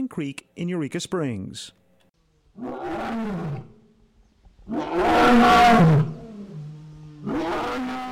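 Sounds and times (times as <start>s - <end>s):
speech: 0.1s - 1.8s, 2.6s - 3.7s, 4.7s - 6.1s
just-fed lion roaring from inside its cage at a big cat refuge: 2.6s - 3.8s, 4.6s - 8.1s.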